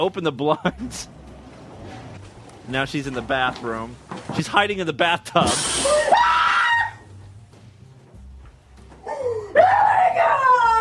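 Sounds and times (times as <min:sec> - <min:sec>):
speech: 0:00.0 - 0:01.2, 0:02.7 - 0:06.0
woman screaming high-pitched in a film scene: 0:05.8 - 0:07.0, 0:09.1 - 0:10.8.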